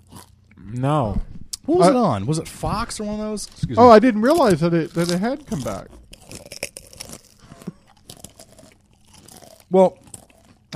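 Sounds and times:
chewing of crunchy food: 0.0 - 0.6, 4.2 - 10.7
speech: 0.7 - 6.0, 9.7 - 10.0
crinkly mouth sounds: 4.3 - 10.7.

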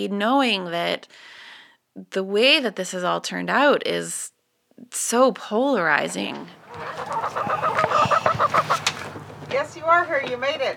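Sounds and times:
speech: 0.0 - 1.4, 2.0 - 10.7
chickens clucking: 6.3 - 9.7
chicken squawks: 6.6 - 9.2.

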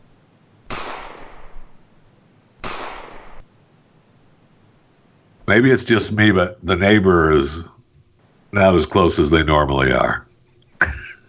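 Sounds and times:
gunshots in a neighborhood: 0.7 - 1.8, 2.6 - 3.5
speech: 5.5 - 7.7, 8.5 - 10.9
laughter: 10.7 - 11.2.

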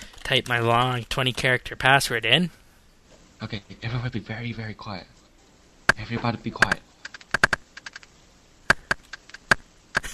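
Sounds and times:
speech: 0.3 - 2.6, 3.4 - 5.1, 6.0 - 6.8
video game magic tree sound effect of sharp dry clicking taps: 6.6 - 8.1, 8.7 - 10.1.

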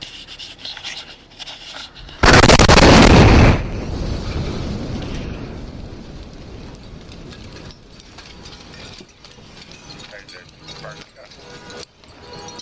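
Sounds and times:
quiet outdoor ambience: 0.0 - 12.6
bomb explosion: 2.2 - 6.6.

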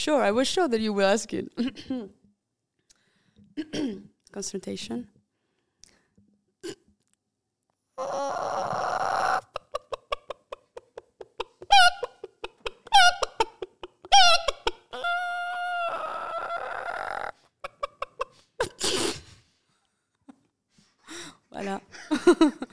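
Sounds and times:
speech: 0.0 - 2.2, 3.6 - 5.1, 8.0 - 9.0, 21.6 - 22.7
woman imitating chicken clucks and squawk: 8.0 - 10.6, 11.4 - 18.8.

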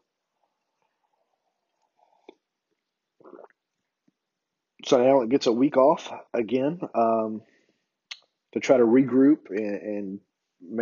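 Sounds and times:
wet slurp and gulp of coffee: 3.2 - 3.6
person sipping coffee: 3.2 - 3.7
soft mouth sounds: 3.2 - 3.7
speech: 4.8 - 7.5, 8.5 - 10.8.

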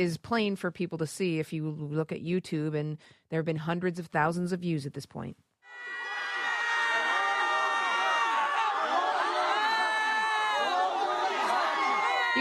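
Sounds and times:
speech: 0.0 - 6.0
protesters screaming and shouting while being pepper sprayed on campus: 5.7 - 12.3.

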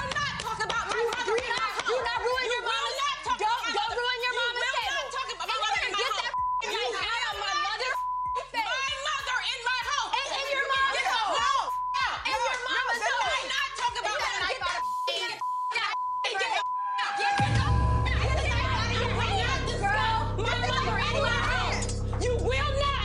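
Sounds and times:
loud animated speech: 0.0 - 23.0
high-pitched censor bleep tone over swearing: 14.8 - 18.1.

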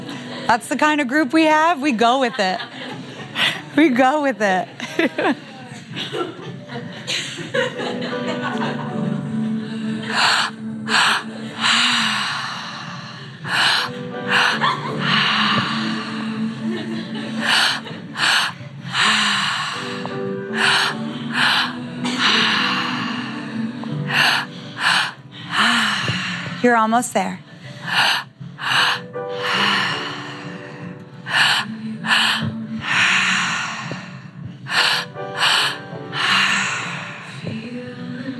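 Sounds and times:
speech: 0.5 - 8.8, 10.1 - 12.2, 26.6 - 28.1
laughter: 2.2 - 3.8, 4.6 - 9.6, 14.3 - 18.6
group of people doing active breathwork breathing hard: 2.8 - 3.8, 9.4 - 26.8, 27.4 - 37.8
people gasping and sighing during breathwork: 2.9 - 3.8, 4.8 - 26.8, 27.4 - 37.8.

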